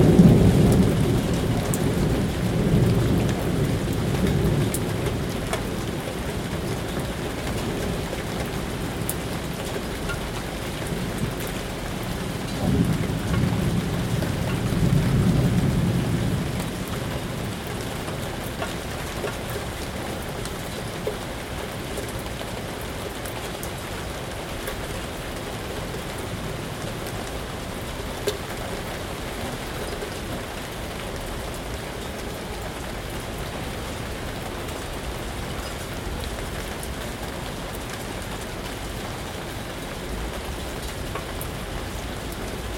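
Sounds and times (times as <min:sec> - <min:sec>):
steady rain during a storm in a city: 0:00.0 - 0:42.7.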